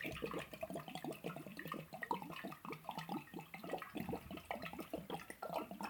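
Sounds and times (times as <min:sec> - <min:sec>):
person chugging water from a bottle: 0:00.0 - 0:05.8.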